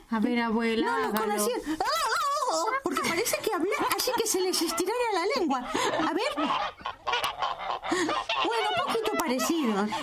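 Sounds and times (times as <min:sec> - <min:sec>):
speech: 0:00.1 - 0:07.0, 0:07.9 - 0:10.0
laughter: 0:01.9 - 0:06.7
turkey gobbling: 0:04.4 - 0:10.0.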